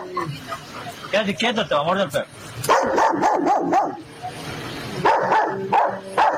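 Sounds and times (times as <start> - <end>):
speech: 0.2 - 4.4, 5.0 - 6.3
police dog barking at a suspect: 2.7 - 4.0, 5.0 - 6.3.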